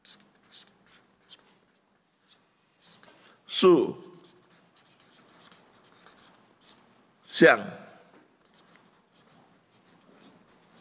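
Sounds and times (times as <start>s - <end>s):
pen scratching across paper in short strokes: 0.0s - 3.1s, 4.1s - 6.9s, 8.4s - 10.8s
speech: 3.6s - 4.1s, 7.4s - 7.8s.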